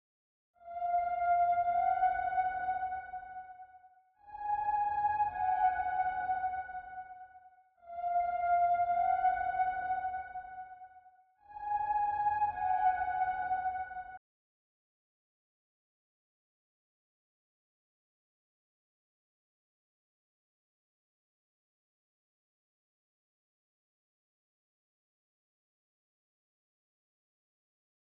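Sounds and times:
ambient music in D-sharp minor: 0.7s - 3.7s, 4.3s - 10.9s, 11.5s - 14.2s.

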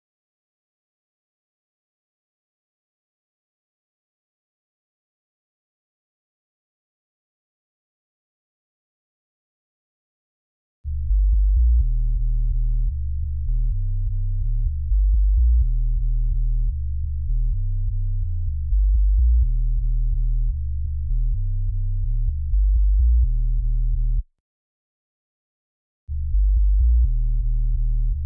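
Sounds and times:
future house sub bass in G at 126 BPM: 10.9s - 24.3s, 26.1s - 28.2s.

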